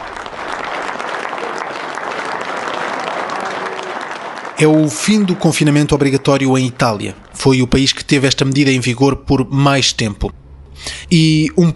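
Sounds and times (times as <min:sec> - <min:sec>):
crowd applauding outdoors along the Venice canals: 0:00.0 - 0:08.0
speech: 0:04.6 - 0:11.7.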